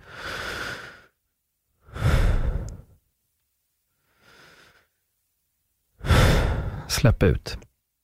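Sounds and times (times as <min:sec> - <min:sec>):
deep breaths drawn in and let out slowly: 0:00.0 - 0:01.2, 0:01.8 - 0:03.0, 0:03.9 - 0:05.0, 0:06.0 - 0:06.9
speech: 0:07.0 - 0:07.7.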